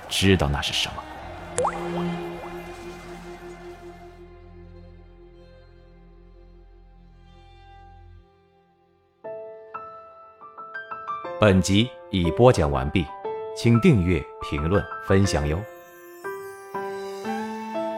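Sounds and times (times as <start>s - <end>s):
speech: 0.1s - 2.3s, 11.4s - 15.7s
warm thick blood dripping down a man's neck and face: 1.0s - 3.3s
low sustained hum: 1.3s - 6.0s.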